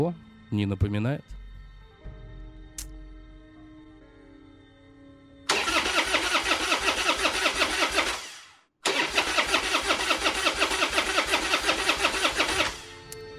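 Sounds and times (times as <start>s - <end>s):
speech: 0.0s - 1.4s
car engine starter cranking without catching: 5.5s - 13.2s.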